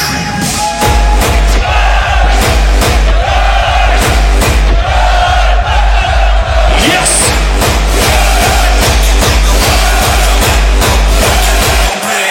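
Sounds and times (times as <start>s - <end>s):
dense crowd at a party screaming and cheering: 0.0s - 12.3s
steady thumping beat: 0.4s - 11.9s.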